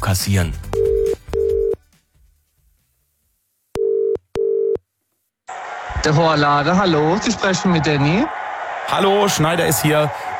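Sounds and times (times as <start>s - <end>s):
speech: 0.1s - 0.9s, 6.0s - 10.3s
ringback tone on a telephone call to a hairdresser's salon: 0.8s - 1.8s, 3.8s - 4.8s.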